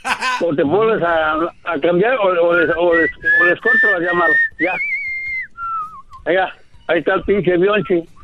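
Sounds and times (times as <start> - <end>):
laughter: 0.0 - 0.6
speech: 0.4 - 5.0, 6.2 - 8.1
pet parrot whistling: 2.9 - 6.2.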